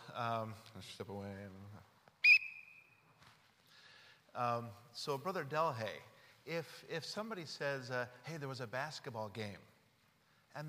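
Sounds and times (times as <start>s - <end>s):
speech: 0.2s - 1.9s, 4.4s - 9.7s
whistle blast: 2.2s - 3.1s.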